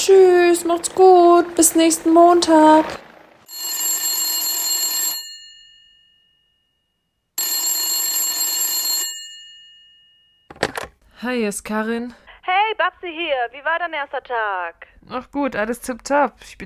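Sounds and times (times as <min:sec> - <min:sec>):
speech: 0:00.0 - 0:03.0, 0:11.2 - 0:16.6
telephone bell ringing: 0:03.4 - 0:10.5
short clatter as the telephone ringing stops: 0:10.5 - 0:11.0.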